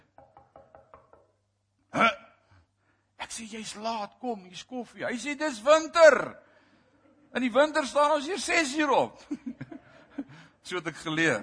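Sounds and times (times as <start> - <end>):
knocking on a wooden door: 0.1 - 1.4
speech: 3.4 - 6.5, 7.3 - 9.5, 10.7 - 11.4
laughter: 9.2 - 10.5.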